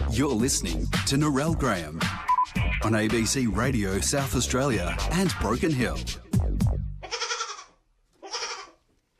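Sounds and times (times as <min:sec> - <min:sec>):
speech: 0:00.1 - 0:02.1, 0:02.8 - 0:06.2
pygmy goats bleating: 0:07.0 - 0:08.8.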